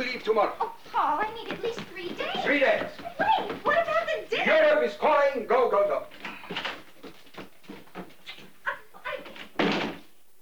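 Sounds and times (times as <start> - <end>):
shuffling movement: 0.0 - 4.8, 5.6 - 9.6
laughter: 0.2 - 1.0, 2.2 - 4.7
speech: 0.2 - 3.5
front door swinging shut with a thud: 9.4 - 10.1.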